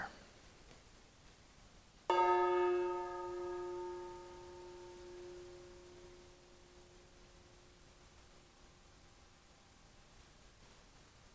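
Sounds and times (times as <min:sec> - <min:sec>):
gong struck: 0:02.1 - 0:07.3.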